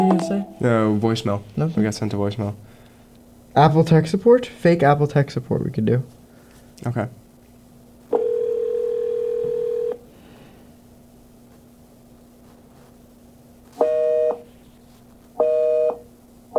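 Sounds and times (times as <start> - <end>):
speech: 0.2 - 2.7, 3.6 - 6.2, 6.8 - 7.2
telephone busy signal: 8.2 - 10.0, 13.8 - 14.4, 15.4 - 16.0.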